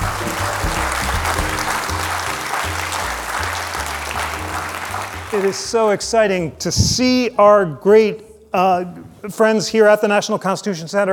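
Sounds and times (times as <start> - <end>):
live audience applause at the National Constitution Center in Philadelphia: 0.0 - 5.9
speech: 5.4 - 11.1.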